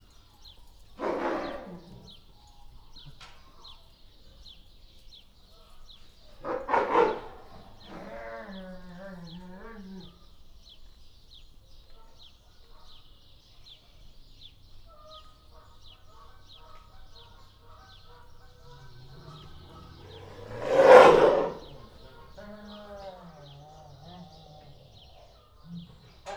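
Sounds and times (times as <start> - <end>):
sloth bear before feeding at a zoo: 1.0 - 3.1, 6.3 - 10.3, 18.1 - 26.3.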